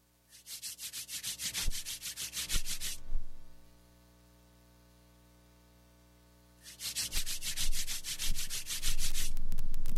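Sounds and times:
hands rubbed together quickly and firmly: 0.3 - 3.0, 6.6 - 9.4.

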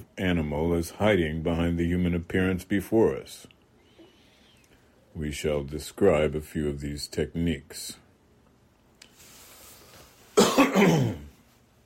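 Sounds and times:
speech: 0.0 - 3.6, 5.2 - 8.0, 10.8 - 11.2
person clearing throat and coughing: 10.4 - 11.4.

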